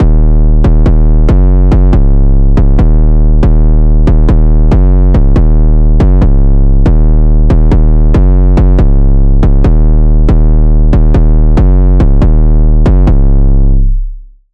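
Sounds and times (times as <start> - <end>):
808 drum machine bass: 0.0 - 13.9.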